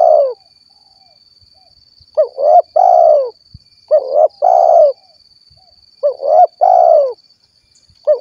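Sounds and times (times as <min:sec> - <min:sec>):
spotted dove cooing: 0:00.0 - 0:00.4, 0:02.2 - 0:05.1, 0:06.0 - 0:07.2, 0:08.0 - 0:08.2.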